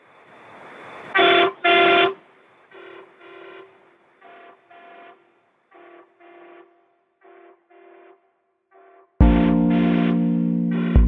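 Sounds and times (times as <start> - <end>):
truck horn honking: 2.8 - 11.0
low rumble: 9.2 - 11.0.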